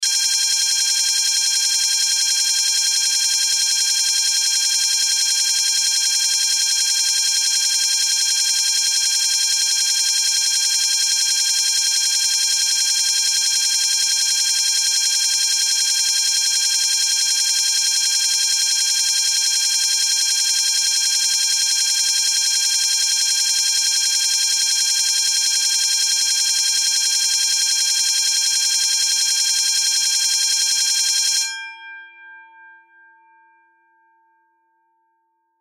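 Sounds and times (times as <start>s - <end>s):
fire and burglar security system alarm bell ringing in a bank: 0.0s - 32.2s.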